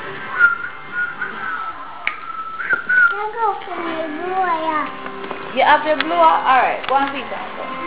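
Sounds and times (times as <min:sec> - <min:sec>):
person whistling: 0:00.3 - 0:03.5
speech: 0:05.6 - 0:07.7.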